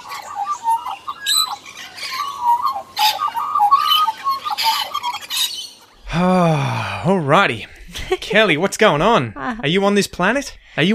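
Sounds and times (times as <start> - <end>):
squawking bird toy sound effect: 0.0 - 5.8
speech: 7.0 - 10.9.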